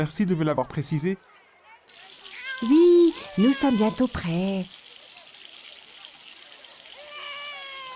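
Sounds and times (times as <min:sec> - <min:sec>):
speech: 0:00.0 - 0:01.3, 0:02.6 - 0:04.8
running shower water: 0:01.9 - 0:07.9
baby crying: 0:02.3 - 0:04.3, 0:07.0 - 0:07.9.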